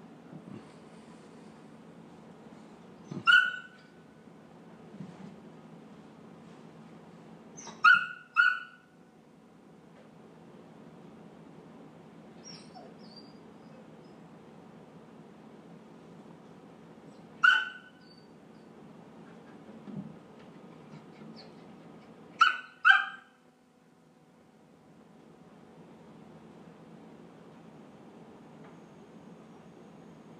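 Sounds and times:
upset dog whimpering: 0:03.0 - 0:03.8, 0:07.6 - 0:08.8, 0:12.4 - 0:14.2, 0:21.0 - 0:21.8
upset dog barking: 0:03.1 - 0:03.8, 0:07.6 - 0:08.9, 0:17.4 - 0:18.1, 0:22.4 - 0:23.4.

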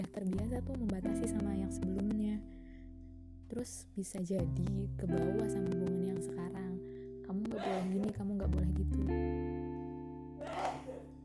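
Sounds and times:
speech: 0:00.0 - 0:02.6, 0:03.5 - 0:06.4, 0:07.3 - 0:09.6
person sneezing: 0:07.6 - 0:08.0, 0:10.4 - 0:11.1.

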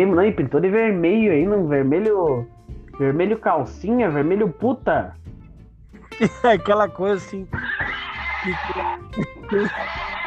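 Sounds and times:
speech: 0:00.0 - 0:05.3, 0:06.2 - 0:07.8, 0:08.4 - 0:10.0
laughter: 0:06.0 - 0:06.7, 0:08.1 - 0:10.2
person imitating a horse neigh with a shaky whinny: 0:07.5 - 0:10.2.

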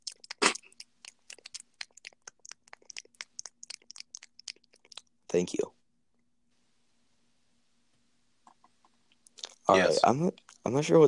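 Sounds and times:
gum being chewed: 0:00.0 - 0:05.1, 0:08.5 - 0:09.6
speech: 0:05.3 - 0:05.8, 0:09.7 - 0:11.0.

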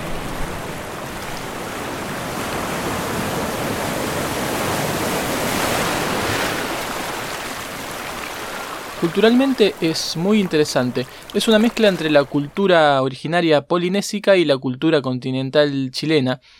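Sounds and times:
sea waves washing in: 0:00.0 - 0:12.6
speech: 0:09.0 - 0:16.5.

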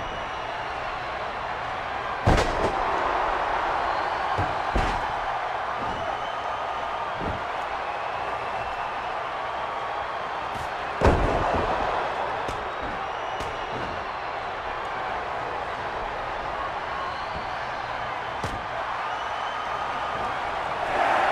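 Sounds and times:
constant crowd roar: 0:00.0 - 0:21.3
wrestler being scoop-slammed onto the ring mat: 0:04.3 - 0:06.2, 0:10.6 - 0:14.2.

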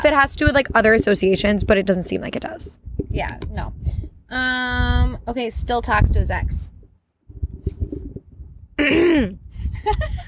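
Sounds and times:
speech: 0:00.0 - 0:06.7, 0:08.8 - 0:10.2
gravelly throat clearing: 0:08.8 - 0:09.4.

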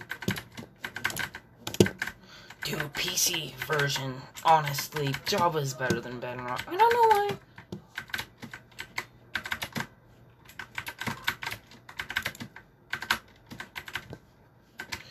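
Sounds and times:
fingers typing on a computer keyboard: 0:00.0 - 0:14.2, 0:14.8 - 0:15.0
speech: 0:02.6 - 0:07.5.

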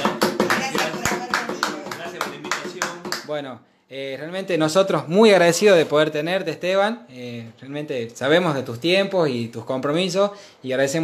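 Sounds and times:
small group applauding: 0:00.0 - 0:03.4
speech: 0:03.3 - 0:11.0.

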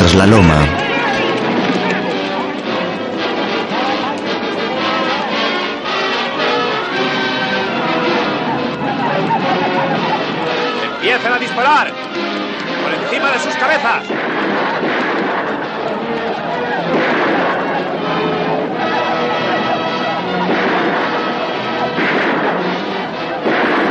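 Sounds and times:
laughter: 0:00.0 - 0:23.8
speech: 0:00.2 - 0:00.9, 0:11.6 - 0:12.2, 0:13.2 - 0:14.9
loud dense gunfire: 0:14.0 - 0:23.8.

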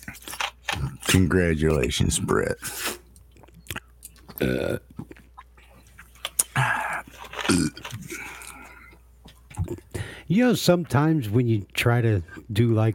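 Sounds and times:
speech: 0:01.1 - 0:02.9, 0:04.4 - 0:04.9, 0:09.7 - 0:12.9
person attempting a burp during a drinking game: 0:04.3 - 0:05.1, 0:06.4 - 0:08.9.

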